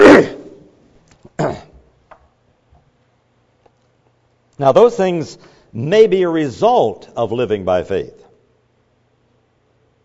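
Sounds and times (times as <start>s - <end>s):
person clearing throat: 0.0s - 2.0s
speech: 4.6s - 8.2s.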